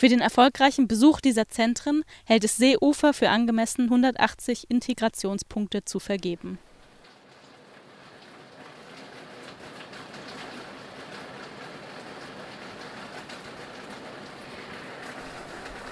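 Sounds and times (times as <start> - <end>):
speech: 0.0 - 6.7
waste sorting conveyor belt running with household waste: 8.3 - 15.9.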